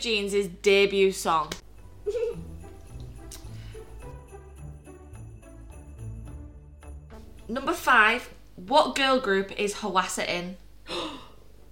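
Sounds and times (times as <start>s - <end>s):
speech: 0.0s - 2.5s, 7.5s - 11.1s
sharp gasp: 10.9s - 11.4s.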